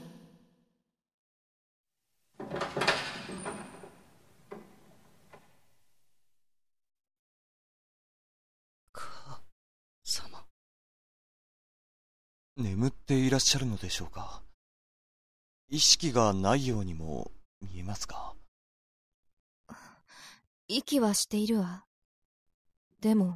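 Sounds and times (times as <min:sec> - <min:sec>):
door opening with grinding sweep: 0:02.4 - 0:05.6
sharp clunks: 0:02.4 - 0:05.6
speech: 0:12.6 - 0:14.5, 0:15.7 - 0:18.4, 0:20.7 - 0:21.9, 0:23.0 - 0:23.3.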